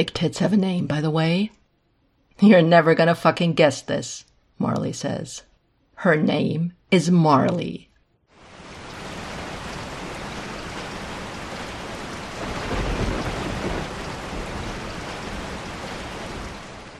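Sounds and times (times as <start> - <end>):
speech: 0.0 - 1.6, 2.4 - 7.9
heavy rain: 8.3 - 16.9
deep roll of thunder: 8.5 - 16.9.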